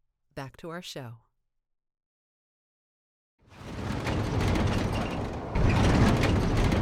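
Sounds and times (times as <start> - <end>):
speech: 0.4 - 1.2
low thunder rumbling in a thunderstorm: 3.6 - 6.8.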